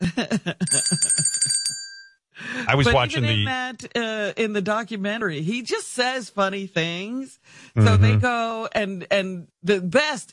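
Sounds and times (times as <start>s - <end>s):
laughter: 0.0s - 1.3s, 2.6s - 3.5s, 7.8s - 8.3s
bell ringing: 0.7s - 2.1s
speech: 2.7s - 10.3s.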